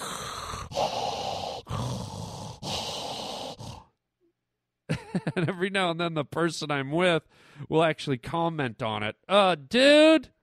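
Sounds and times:
loud heavy rough breathing: 0.0 - 4.0, 7.3 - 7.7
laughter: 4.9 - 5.6
speech: 5.2 - 10.4.

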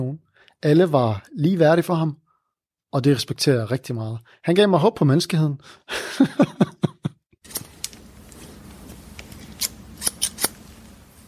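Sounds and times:
speech: 0.6 - 2.2, 2.9 - 6.9
laughter: 5.9 - 7.2
scissors cutting a man's hair at a barber: 9.3 - 10.6.

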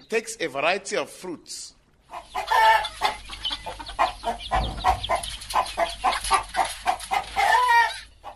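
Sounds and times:
speech: 0.1 - 3.2
dense flock of chickens clucking and squawking at a riverside poultry farm: 1.8 - 8.3.

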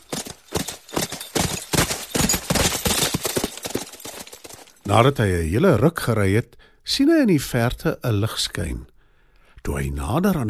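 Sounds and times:
horse hooves clip-clopping at a brisk pace while riding: 0.0 - 5.0
speech: 4.9 - 8.9, 9.6 - 10.4.

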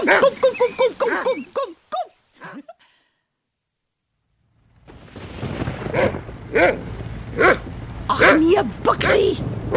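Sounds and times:
dog barking at thunder: 0.0 - 0.4, 7.4 - 7.6, 8.2 - 8.4, 9.1 - 9.7
deep rumble of thunder: 4.4 - 9.7
speech: 8.6 - 9.7.

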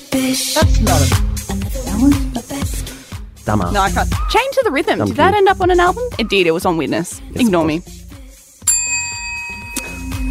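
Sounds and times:
speech: 0.2 - 1.4, 2.0 - 2.9, 3.5 - 8.0
bright bell ringing: 8.6 - 10.2.

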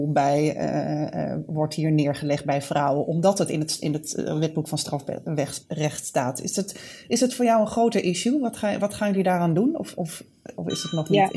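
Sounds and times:
conversational speech: 0.0 - 11.3
parliament bell ringing in the Dutch House of Representatives: 10.7 - 11.3.

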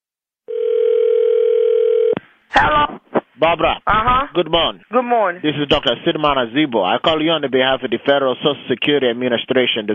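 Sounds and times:
telephone line ringing tone on the caller's end: 0.5 - 2.2
speech: 3.4 - 9.9.

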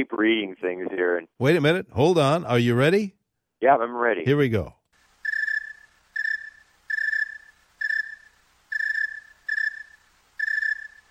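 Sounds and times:
speech: 0.0 - 4.8
cricket chirping slowly on a cool night: 5.0 - 11.0.

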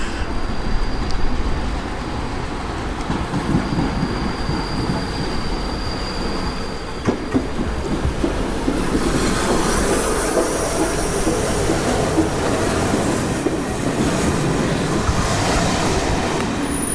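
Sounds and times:
steam train rolling into a station: 0.0 - 16.9
thin metallic squeal of steam train wheels: 3.6 - 7.0.

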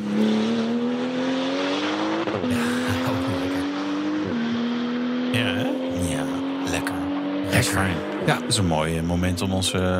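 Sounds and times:
stripped-out race car engine revving: 0.0 - 9.9
speech: 7.6 - 9.9.

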